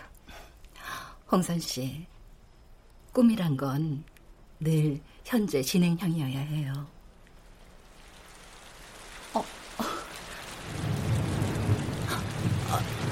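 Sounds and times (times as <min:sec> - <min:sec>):
speech: 0:01.3 - 0:02.1, 0:03.2 - 0:07.0, 0:09.3 - 0:09.6
sudden rain shower: 0:04.3 - 0:13.1
rain drips and splashes: 0:07.2 - 0:13.1.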